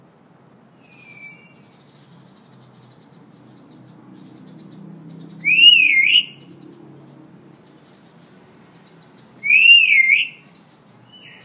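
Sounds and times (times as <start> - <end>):
hill myna whistling a bright wavering high note: 5.4 - 6.4, 9.4 - 10.4.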